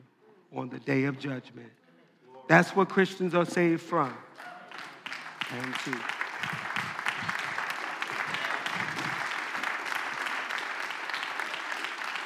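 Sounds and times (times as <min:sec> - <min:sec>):
speech: 0:00.5 - 0:01.8, 0:02.5 - 0:04.5, 0:05.5 - 0:06.6
congregation clapping hands: 0:03.6 - 0:12.2.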